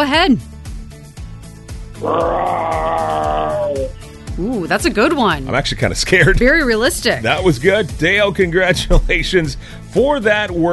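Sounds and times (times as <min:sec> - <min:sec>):
speech: 0:00.0 - 0:00.5, 0:02.0 - 0:03.8, 0:04.4 - 0:10.7
person imitating a lion roar: 0:02.0 - 0:04.5
low thumping beat: 0:03.2 - 0:10.7.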